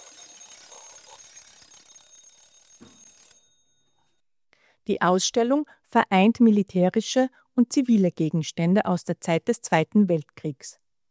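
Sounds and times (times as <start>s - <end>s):
old mechanical alarm clock ringing: 0.0s - 4.1s
speech: 4.9s - 10.8s.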